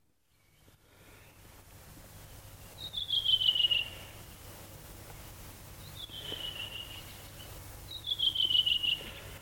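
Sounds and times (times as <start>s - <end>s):
faint steady hum: 0.0s - 9.4s
redwing thrush singing in short high whistled phrases: 2.7s - 4.2s, 5.8s - 9.2s.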